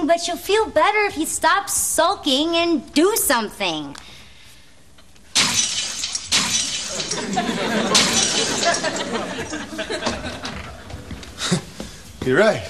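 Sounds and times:
speech: 0.0 - 4.0, 8.7 - 10.5, 12.2 - 12.6
porcelain cat figurines being smashed: 5.4 - 9.5
porcelain shards clattering and scattering: 5.4 - 9.6
laughter: 6.9 - 11.7.

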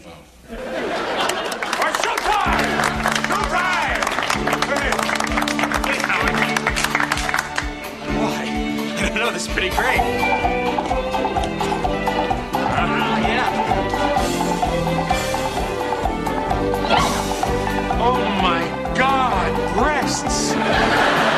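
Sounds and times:
laughter: 0.5 - 3.2, 20.4 - 21.3
loud busy musical accompaniment in a lounge stage show: 2.2 - 21.3
performers imitating horse neighs and whinnies in a lounge stage show: 16.6 - 17.9.

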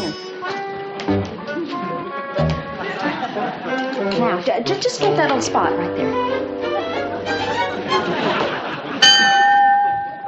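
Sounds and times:
murmured voices and chatter: 0.8 - 10.2
laughter: 1.6 - 5.2, 7.2 - 10.2
speech: 4.2 - 6.5
doorbell ringing with a bright clear chime: 9.0 - 10.2.

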